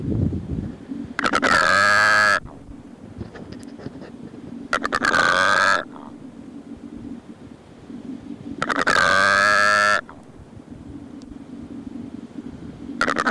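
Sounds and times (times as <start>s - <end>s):
low hum: 0.0s - 13.3s
secretarybird croaking: 0.8s - 13.3s.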